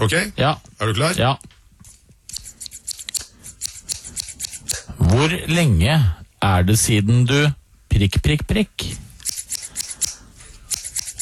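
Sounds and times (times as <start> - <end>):
speech: 0.0 - 1.5, 5.1 - 9.1
scissors snipping as a jingle: 1.8 - 4.9, 9.2 - 11.2.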